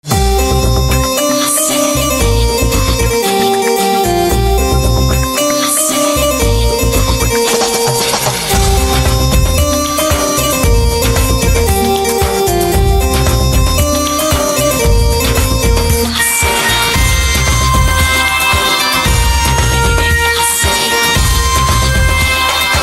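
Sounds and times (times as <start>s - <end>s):
santoor instrumental ringtone: 0.0s - 22.8s.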